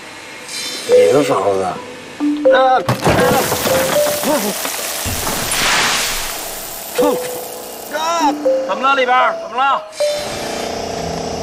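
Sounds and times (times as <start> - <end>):
speech: 0.9 - 4.8, 7.0 - 10.4
crumbling concrete debris from a smashed wall: 2.9 - 8.1.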